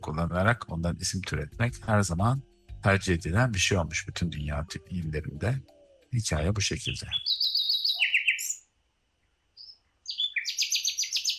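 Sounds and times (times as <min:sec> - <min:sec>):
speech: 0:00.0 - 0:07.4
bulbul singing chirping notes and whistles: 0:03.4 - 0:08.7, 0:09.6 - 0:11.3.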